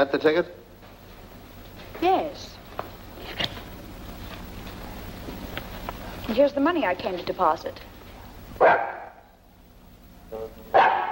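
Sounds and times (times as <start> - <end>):
speech: 0.0 - 0.7, 2.0 - 2.6, 6.3 - 7.9, 8.6 - 8.9
dog yelping: 8.6 - 9.2
dog barking: 8.6 - 9.3, 10.7 - 11.1.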